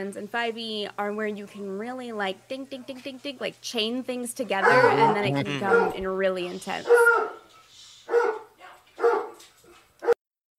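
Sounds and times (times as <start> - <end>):
speech: 0.0 - 7.3
dogs barking indoors: 4.6 - 6.1, 6.7 - 9.4.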